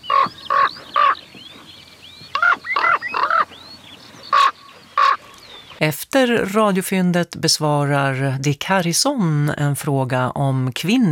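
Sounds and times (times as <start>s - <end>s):
bird calling in harsh nasal squawks: 0.0s - 5.8s
speech: 5.8s - 11.0s.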